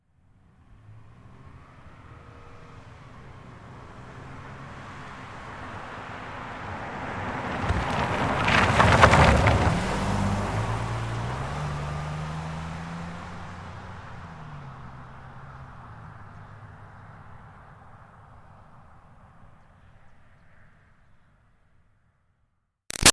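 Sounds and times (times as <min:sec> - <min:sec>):
2005 Toyota Highlander V6 driving by corner on dirt: 0:00.7 - 0:18.4.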